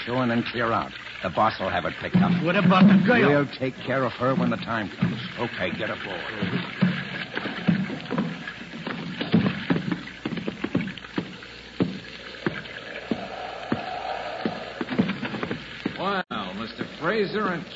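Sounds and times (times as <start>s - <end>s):
speech: 0.0s - 6.7s, 17.2s - 17.7s
rowboat oars dipping and splashing in water: 1.7s - 16.1s
wooden knocks of a rowboat: 2.0s - 3.4s, 4.4s - 16.0s.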